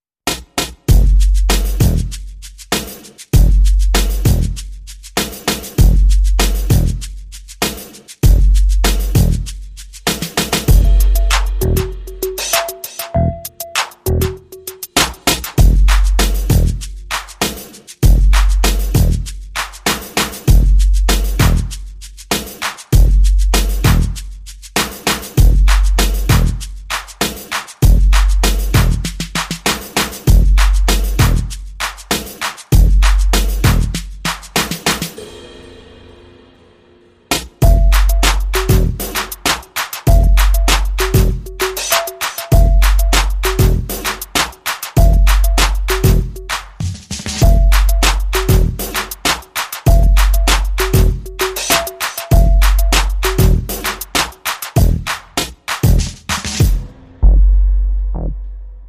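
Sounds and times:
drums: 0.2 - 58.2
bass: 0.9 - 2.7, 3.3 - 5.2, 5.8 - 7.6, 8.2 - 10.1, 10.7 - 12.5, 13.2 - 14.6, 15.6 - 17.4, 18.0 - 19.8, 20.5 - 22.3, 23.0 - 24.8, 25.4 - 27.2, 27.8 - 29.6, 30.3 - 32.0, 32.8 - 34.5, 37.6 - 39.3, 40.1 - 41.7, 42.5 - 44.2, 45.0 - 49.1, 49.9 - 51.6, 52.3 - 54.0, 54.8 - 58.8.

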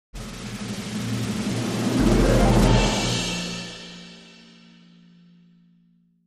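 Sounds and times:
snare drum roll: 0.2 - 4.1
impact hit: 0.2 - 4.2.

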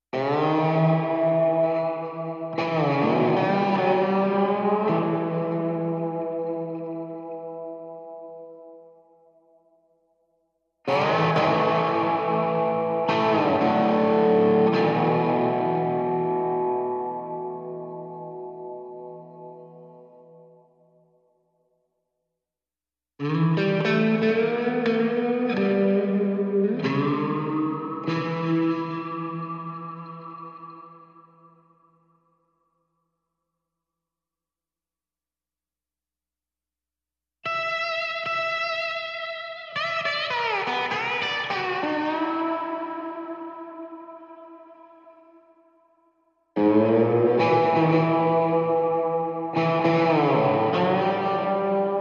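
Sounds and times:
guitar playing in E minor: 0.2 - 8.8, 10.9 - 20.6, 23.2 - 31.3, 37.5 - 45.4, 46.6 - 51.9.

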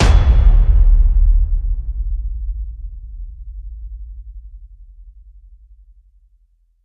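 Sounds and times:
low blowout hit: 0.0 - 4.3.

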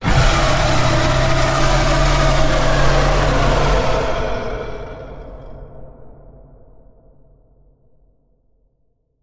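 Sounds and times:
werewolf howl with pitch bend: 0.0 - 5.9.

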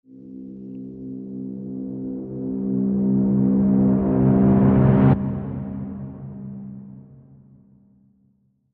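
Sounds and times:
reversed timpani: 2.4 - 7.6.

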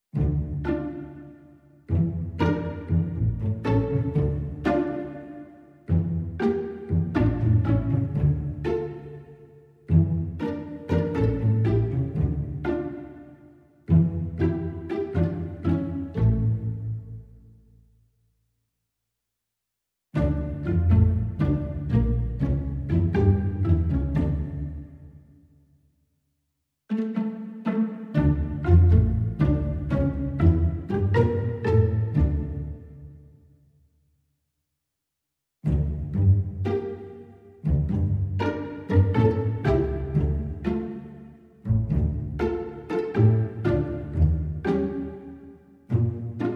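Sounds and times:
string instruments playing: 0.1 - 17.6, 20.2 - 25.4, 26.9 - 33.2, 35.6 - 46.5.

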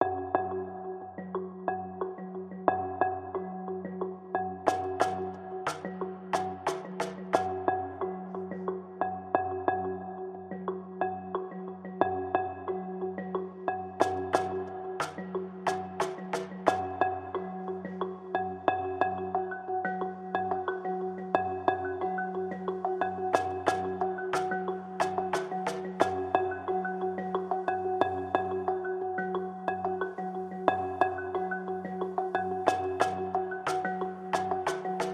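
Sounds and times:
marimba: 0.0 - 35.1
ocean drums: 4.7 - 7.7, 14.0 - 17.2, 23.3 - 26.6, 32.6 - 35.1.

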